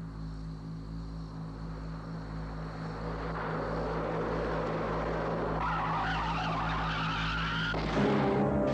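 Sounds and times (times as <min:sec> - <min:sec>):
car engine roaring: 0:01.6 - 0:08.7
tires screeching in a long skid: 0:03.1 - 0:08.7.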